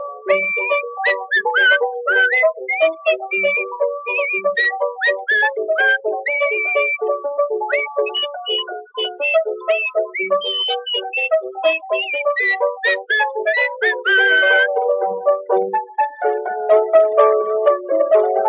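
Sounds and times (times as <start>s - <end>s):
dense steady musical accompaniment: 0.0s - 18.4s
person whistling a lively tune: 0.3s - 7.1s, 7.7s - 14.8s.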